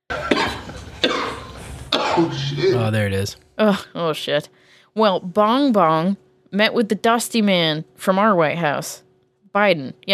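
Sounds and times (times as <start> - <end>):
person coughing in a rough hacking fit after taking a hit of smoke: 0.1 - 3.0
raspy breathing: 1.4 - 1.9, 4.5 - 5.0
speech: 2.2 - 10.1.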